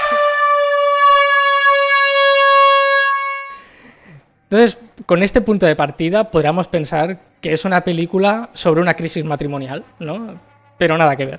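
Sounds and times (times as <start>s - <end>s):
loud steady siren sound effect: 0.0s - 3.7s
speech: 4.5s - 11.3s.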